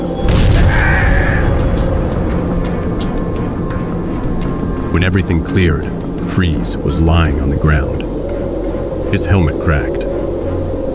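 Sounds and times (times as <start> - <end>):
heavy rolling rumble: 0.0 - 10.9
cannon with a ruptured power core exploding: 0.2 - 3.8
scattered crackles: 0.2 - 5.6
speech: 5.0 - 8.0, 9.1 - 10.0.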